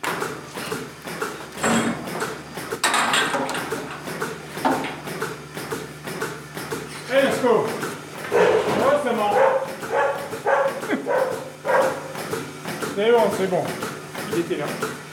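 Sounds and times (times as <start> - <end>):
steady outdoor hum: 0.0 - 15.1
farm dog barking on a cattle farm: 8.3 - 8.7, 9.3 - 12.1
speech: 13.2 - 13.8, 14.4 - 15.0.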